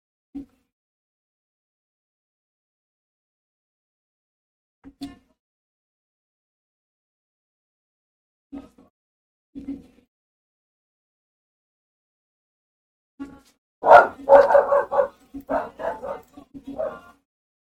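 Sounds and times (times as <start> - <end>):
dog yapping and whining: 13.8 - 16.2, 16.8 - 17.0
dog barking: 13.8 - 17.0.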